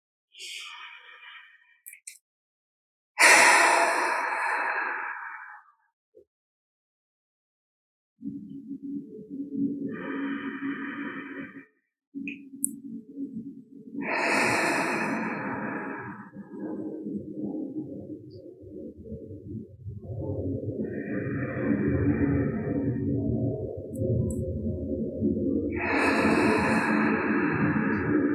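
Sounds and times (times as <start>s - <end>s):
slow deep breaths in and out: 0.3s - 1.8s, 3.2s - 5.7s, 8.7s - 28.3s.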